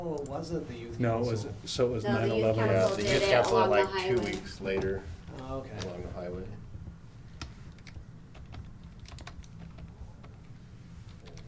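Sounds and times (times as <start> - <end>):
speech: 0.0 - 6.6
typing on a computer keyboard: 7.4 - 11.4.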